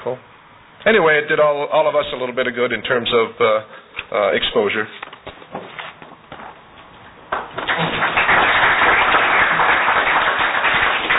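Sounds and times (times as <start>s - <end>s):
speech: 0.0s - 5.0s
audience applause: 7.3s - 11.1s.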